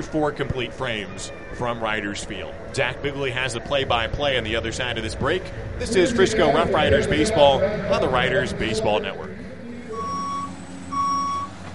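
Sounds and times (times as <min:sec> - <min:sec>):
speech: 0:00.0 - 0:09.4
low engine rumble: 0:00.0 - 0:11.7
construction equipment reversing beeps: 0:09.9 - 0:11.6.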